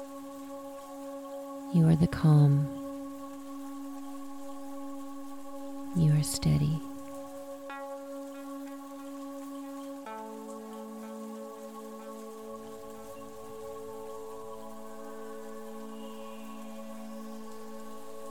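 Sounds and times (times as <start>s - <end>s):
steady rain: 0.0s - 18.2s
speech: 1.7s - 2.8s, 6.0s - 6.9s.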